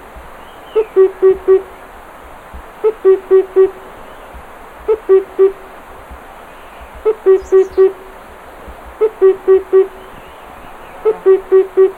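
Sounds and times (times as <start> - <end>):
faint background hiss: 0.0 - 11.9
Himalayan cuckoo uttering mellow low hoots: 0.4 - 1.7, 2.8 - 4.3, 4.9 - 5.6, 6.7 - 8.1, 9.0 - 11.9.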